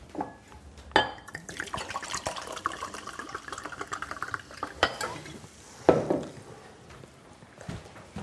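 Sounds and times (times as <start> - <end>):
glass clinking: 1.0 - 6.1
water poured from a nearly empty bottle into glasses: 1.3 - 5.4.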